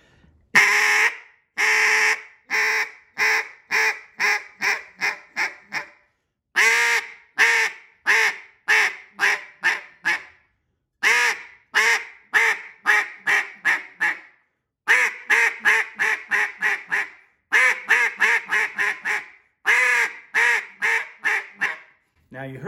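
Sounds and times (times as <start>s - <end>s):
duck call blown in a quacking cadence: 0.6s - 6.0s, 6.6s - 10.3s, 11.0s - 14.3s, 14.9s - 21.9s.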